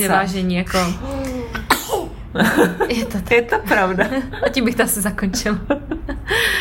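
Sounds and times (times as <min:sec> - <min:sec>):
speech: 0:00.0 - 0:01.1, 0:02.3 - 0:06.5
person clearing throat: 0:00.8 - 0:02.2
raspy forceful coughing: 0:00.8 - 0:02.2
laughter: 0:02.4 - 0:06.5.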